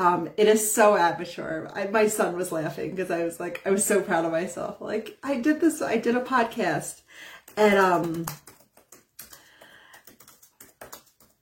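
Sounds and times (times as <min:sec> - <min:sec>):
speech: 0:00.0 - 0:08.5
typing on a computer keyboard: 0:07.3 - 0:11.4.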